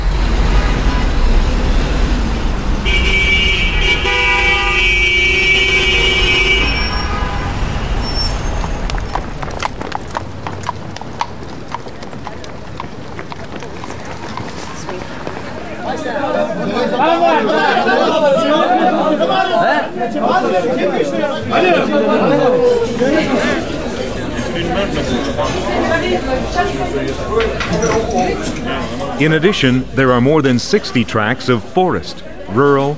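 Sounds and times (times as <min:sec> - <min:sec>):
steady traffic rumble on a New York City street: 0:00.0 - 0:17.4, 0:21.2 - 0:32.9
crowd chatter and murmuring voices: 0:00.0 - 0:32.9
sustained horn-like tone: 0:02.8 - 0:09.0
horse hooves clip-clopping: 0:08.1 - 0:16.0
speech: 0:29.2 - 0:32.9.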